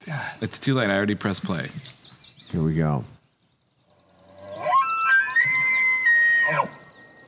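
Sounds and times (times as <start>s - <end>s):
speech: 0.1s - 3.2s
elk call: 4.5s - 7.2s.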